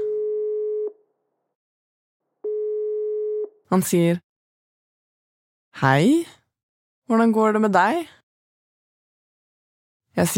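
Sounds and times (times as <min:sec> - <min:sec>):
electronic phone ringback tone through a handset: 0:00.0 - 0:01.0, 0:02.4 - 0:03.5
speech: 0:03.7 - 0:04.2, 0:05.8 - 0:06.4, 0:07.1 - 0:08.2, 0:10.2 - 0:10.3.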